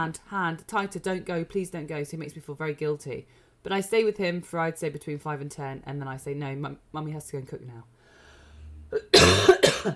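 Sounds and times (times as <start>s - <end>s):
speech: 0.0s - 8.0s, 8.9s - 9.9s
person giving harsh coughs: 8.9s - 9.9s.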